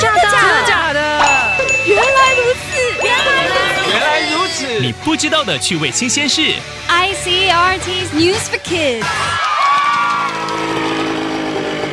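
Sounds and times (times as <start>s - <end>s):
faint crowd-like noise: 0.0s - 5.2s
speech: 4.9s - 9.5s
loud motorcycle engine revving: 10.5s - 11.9s.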